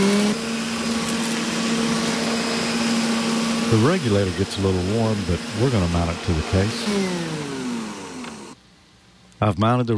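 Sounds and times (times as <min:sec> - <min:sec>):
homemade fume extractor fan whirring and humming: 0:00.0 - 0:08.9
speech: 0:03.7 - 0:07.5, 0:09.4 - 0:09.9.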